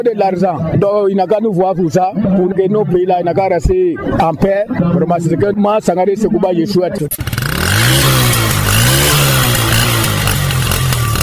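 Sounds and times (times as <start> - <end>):
speech: 0.0 - 8.2
road noise: 6.4 - 11.2
motorcycle engine revving while riding in Côte d'Ivoire: 7.0 - 11.2.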